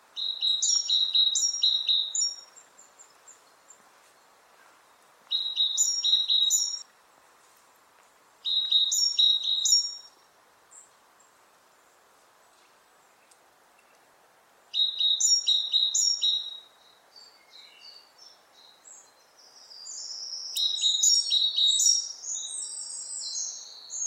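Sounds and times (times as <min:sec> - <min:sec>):
great tit Parus major singing: 0:00.2 - 0:03.8, 0:05.3 - 0:06.8, 0:08.4 - 0:10.2, 0:14.7 - 0:24.0.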